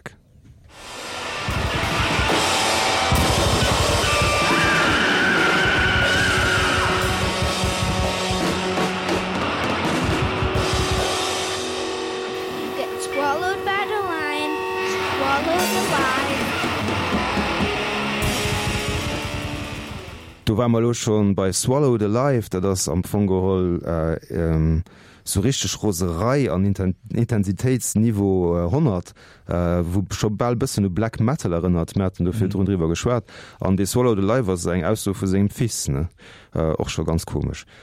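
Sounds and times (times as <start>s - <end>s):
wall of sustained distorted guitars: 0.7s - 20.5s
crashing drums and cymbals in a post-rock track: 0.8s - 13.7s, 14.8s - 20.4s
swelling bending melodic tones: 6.9s - 19.7s
speech: 20.6s - 37.8s.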